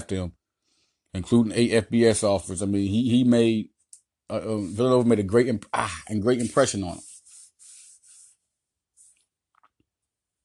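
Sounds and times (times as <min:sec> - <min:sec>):
speech: 0:00.0 - 0:00.4, 0:01.1 - 0:03.7, 0:04.3 - 0:07.1
paper rustling and rubbing in swishing strokes: 0:06.2 - 0:08.4.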